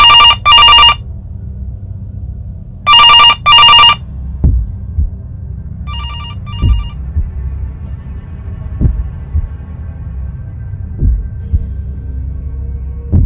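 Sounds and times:
telephone ringing: 0.0s - 1.0s, 2.9s - 4.0s, 5.9s - 7.0s
low throbbing heartbeat-like pulse: 0.0s - 13.2s.

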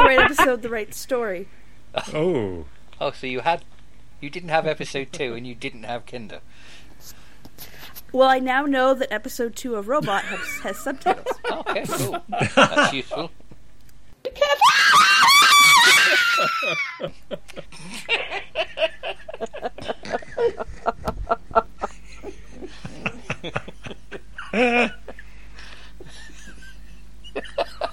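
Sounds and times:
laughter: 0.0s - 0.6s, 10.0s - 13.3s, 14.4s - 25.2s, 26.0s - 27.9s
speech: 0.4s - 7.2s, 8.1s - 13.4s, 14.2s - 21.7s, 24.5s - 25.0s
loud piercing human scream: 14.4s - 17.1s.

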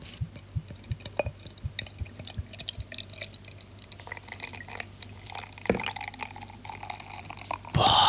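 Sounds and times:
beer bubbles fizzing: 0.9s - 7.6s
Bavarian helles beer pouring into a frozen glass mug: 2.2s - 7.5s.

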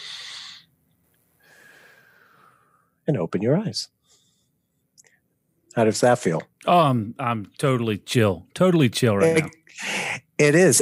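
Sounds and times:
deep breath in: 0.0s - 0.7s, 1.4s - 2.9s
faint steady high hum: 1.4s - 10.8s
speech: 3.1s - 4.0s, 5.8s - 10.8s.

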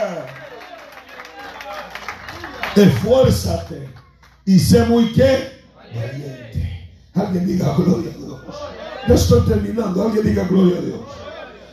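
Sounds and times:
crowd clapping and applauding: 0.0s - 4.4s
speech: 2.8s - 6.6s, 7.2s - 11.3s.

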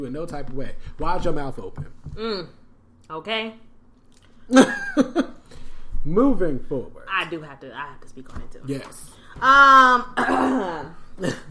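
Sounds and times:
speech: 0.0s - 3.7s, 4.5s - 5.4s, 6.0s - 11.4s
person clearing throat: 10.2s - 11.4s.

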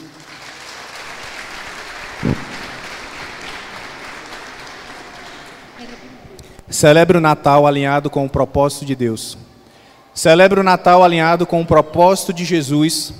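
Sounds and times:
crowd applauding: 0.0s - 6.1s
speech: 6.7s - 9.4s, 10.2s - 13.1s.

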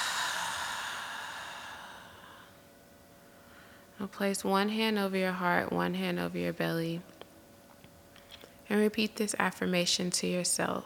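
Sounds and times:
deep exhale after a breath in through the nose during guided meditation: 0.0s - 2.6s
speech: 4.0s - 7.1s, 8.7s - 10.8s.

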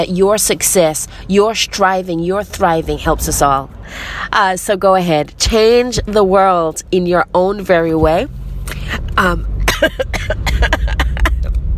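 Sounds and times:
speech: 0.0s - 11.0s
person coughing to clear seawater from throat: 9.7s - 11.5s.

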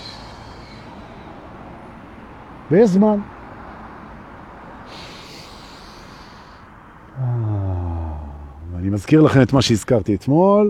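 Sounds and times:
long exhaled breath: 0.0s - 1.8s, 4.8s - 8.5s
speech: 2.7s - 3.3s, 9.0s - 10.6s.

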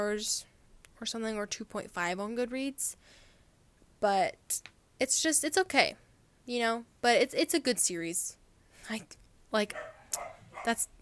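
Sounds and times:
speech: 0.0s - 3.2s, 4.0s - 10.9s
dog barking in short sharp bursts: 9.7s - 10.8s.

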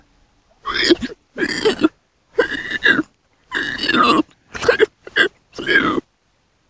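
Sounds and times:
voice imitating a running pig's huffing breaths and gruff snorts: 0.7s - 6.0s.

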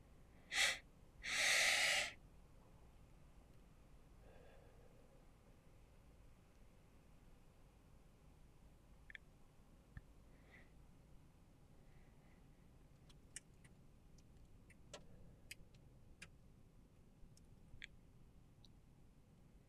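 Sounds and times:
sharp sniff and rushing inhale through the nose: 0.5s - 2.2s
soft faint exhale through the mouth: 0.5s - 2.2s, 4.2s - 5.2s.

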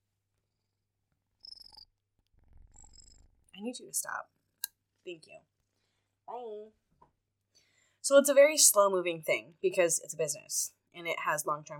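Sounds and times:
cat purring: 1.4s - 4.2s
speech: 3.6s - 4.4s, 5.0s - 5.6s, 6.3s - 6.8s, 8.1s - 11.7s.

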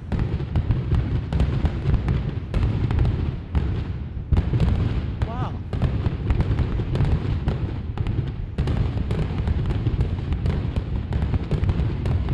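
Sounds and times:
barrage of fireworks exploding: 0.0s - 12.3s.

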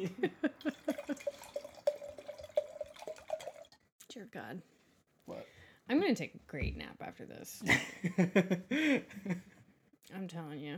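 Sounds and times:
speech: 0.0s - 0.8s, 4.3s - 9.5s, 10.2s - 10.7s
laughter: 0.0s - 1.3s, 7.7s - 9.5s
wine glugging from a bottle into a glass: 0.6s - 3.8s.

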